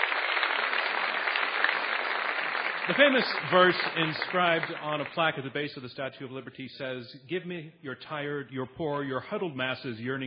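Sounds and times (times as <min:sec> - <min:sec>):
audience applause: 0:00.0 - 0:05.6
speech: 0:02.9 - 0:10.2.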